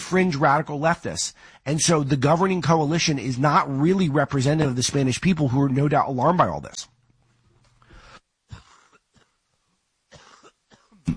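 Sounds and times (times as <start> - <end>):
speech: 0.1 - 6.9
harsh coughing: 8.5 - 9.5, 10.1 - 11.1
throat-clearing rasp: 10.1 - 11.1.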